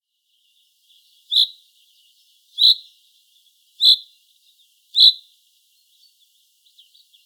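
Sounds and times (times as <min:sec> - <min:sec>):
common chaffinch ringing pink calls: 0:01.3 - 0:01.6, 0:02.6 - 0:02.9, 0:03.8 - 0:04.1, 0:05.0 - 0:05.2.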